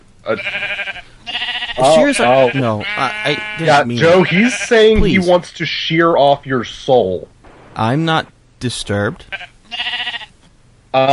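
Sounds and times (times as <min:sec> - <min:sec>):
speech: 0:00.2 - 0:00.9, 0:01.8 - 0:10.0, 0:10.9 - 0:11.1
sheep bleating: 0:00.2 - 0:05.0, 0:09.2 - 0:10.4.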